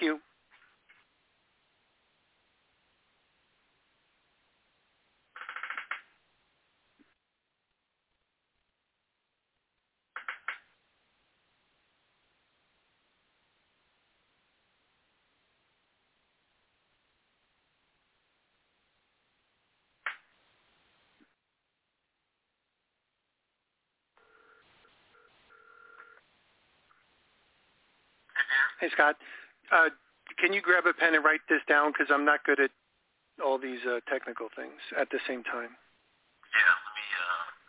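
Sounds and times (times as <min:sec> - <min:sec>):
faint telephone line hiss: 0:00.0 - 0:37.6
telephone tone bursts while dialing into a conference call: 0:24.2 - 0:26.2
speech: 0:28.4 - 0:32.8, 0:33.4 - 0:35.8.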